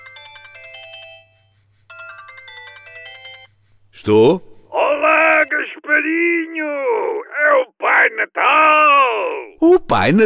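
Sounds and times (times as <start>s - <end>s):
phone ringtone playing rapid bright electronic melody: 0.0s - 3.6s, 5.0s - 5.5s
speech: 4.0s - 4.5s, 5.6s - 10.2s.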